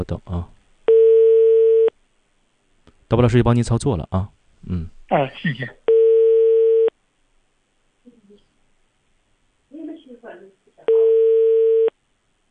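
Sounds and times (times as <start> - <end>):
speech: 0.0 - 0.6, 3.1 - 5.8
telephone call ringing tones: 0.9 - 1.9, 5.9 - 6.9, 10.9 - 11.9.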